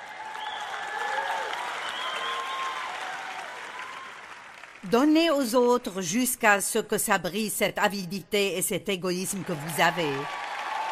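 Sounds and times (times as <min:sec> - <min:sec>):
crowd shouts and cheers: 0:00.0 - 0:04.5, 0:10.2 - 0:10.9
crowd applauding: 0:00.0 - 0:04.9, 0:09.3 - 0:10.9
speech: 0:04.8 - 0:10.4.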